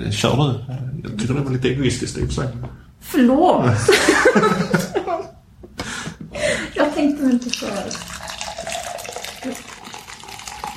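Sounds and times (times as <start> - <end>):
speech: 0.0 - 5.0, 7.2 - 8.1
laughter: 3.8 - 5.4
coffee pouring into a cup: 7.3 - 10.7.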